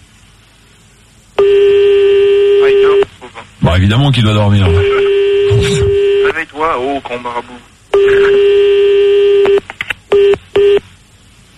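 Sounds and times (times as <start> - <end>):
long steady telephone tone: 1.3 - 6.5, 7.9 - 10.9
speech: 3.8 - 5.0, 6.5 - 8.7.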